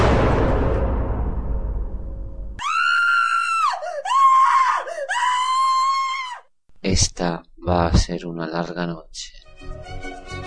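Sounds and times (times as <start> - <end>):
booming burst of noise: 0.0 - 2.6
woman screaming shrilly: 2.6 - 6.5
speech: 7.0 - 10.1.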